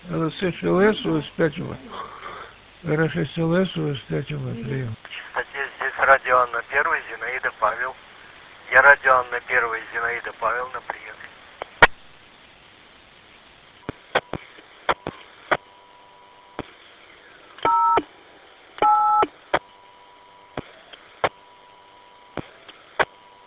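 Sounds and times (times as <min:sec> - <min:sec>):
faint hiss: 0:00.0 - 0:18.8
speech: 0:00.1 - 0:02.2, 0:02.8 - 0:08.1, 0:08.7 - 0:11.0
dual-tone dialing bursts: 0:17.7 - 0:18.0, 0:18.8 - 0:19.3.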